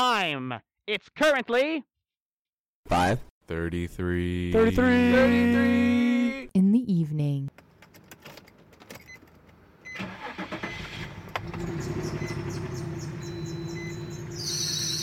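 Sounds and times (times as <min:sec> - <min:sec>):
speech: 0:00.0 - 0:01.9, 0:02.8 - 0:06.0, 0:06.6 - 0:07.6
car engine cranking with a rough stuttering churn: 0:07.6 - 0:14.4
car engine droning idle: 0:10.0 - 0:14.4.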